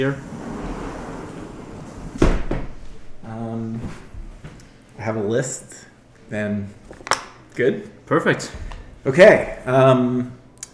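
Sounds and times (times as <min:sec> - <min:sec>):
speech: 0:00.0 - 0:00.3, 0:05.0 - 0:10.4
creaky tonal scrape of a door: 0:00.0 - 0:02.1
steady low room hum: 0:00.0 - 0:10.7
door thumping shut: 0:02.1 - 0:02.8.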